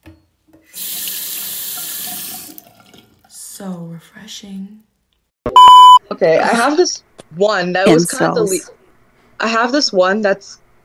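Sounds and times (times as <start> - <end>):
tap water gushing into a glass: 0.7 - 3.3
speech: 3.6 - 4.9, 6.1 - 8.8, 9.4 - 10.6.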